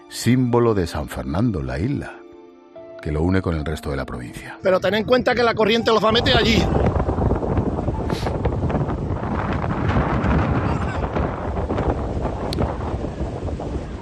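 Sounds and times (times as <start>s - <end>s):
speech: 0.1s - 2.2s, 3.0s - 7.0s
strong wind buffeting the microphone: 4.7s - 14.0s.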